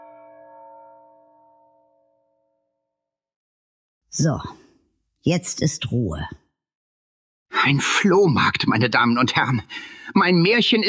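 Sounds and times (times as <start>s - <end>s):
church bells ringing for a wedding: 0.0s - 2.3s
speech: 4.1s - 4.6s, 5.2s - 6.4s, 7.6s - 10.8s.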